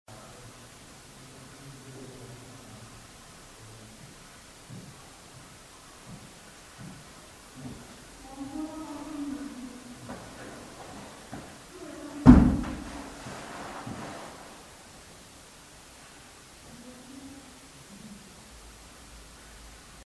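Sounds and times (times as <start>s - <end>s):
people talking in an abbey cloister: 0.1s - 14.7s, 16.6s - 19.2s
footsteps in an empty cloister: 3.8s - 15.1s
knock in an empty cloister: 12.2s - 13.1s.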